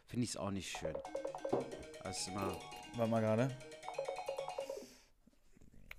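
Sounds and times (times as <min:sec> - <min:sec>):
speech: 0:00.1 - 0:03.7
phone ringtone with quick bright electronic melody: 0:00.8 - 0:05.1.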